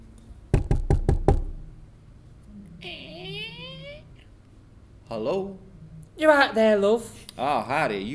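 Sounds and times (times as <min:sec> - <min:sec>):
knocking on a door: 0:00.5 - 0:01.6
speech: 0:05.1 - 0:05.6, 0:06.2 - 0:08.1.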